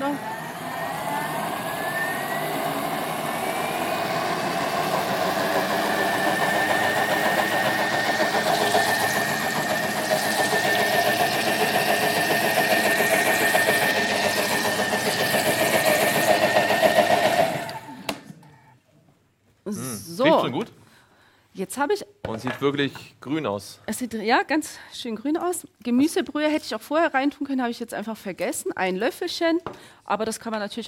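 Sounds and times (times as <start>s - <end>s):
blender motor whirring while mixing green vegetable juice: 0.0s - 18.4s
speech: 21.8s - 30.8s.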